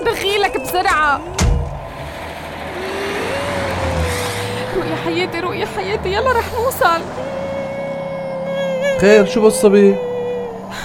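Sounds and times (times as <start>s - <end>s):
speech: 0.7s - 1.4s, 4.8s - 7.4s, 9.0s - 10.1s
taxi engine revving and pulling away: 0.9s - 10.8s.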